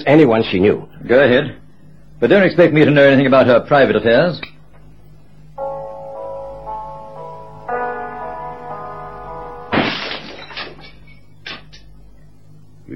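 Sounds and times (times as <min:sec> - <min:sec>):
speech: 0:00.0 - 0:01.6, 0:02.2 - 0:04.5
sustained organ-like musical tone: 0:05.1 - 0:11.4
gramophone record smashing: 0:09.6 - 0:11.8
clatter of record pieces: 0:09.8 - 0:11.9.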